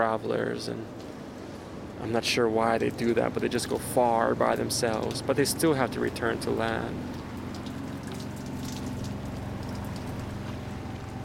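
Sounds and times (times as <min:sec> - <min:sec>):
speech: 0:00.0 - 0:01.1, 0:02.0 - 0:07.2
heavy rain pouring down on a boat at sea: 0:00.0 - 0:11.2.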